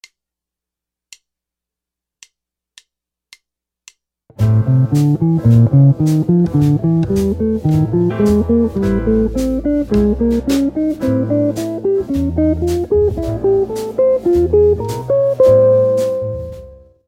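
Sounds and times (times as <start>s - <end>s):
guitar playing pentatonic scale pattern: 4.4s - 16.9s.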